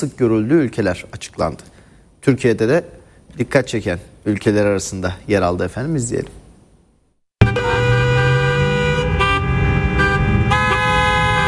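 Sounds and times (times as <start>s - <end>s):
speech: 0.0s - 6.4s
car horns honking in traffic: 7.4s - 11.4s.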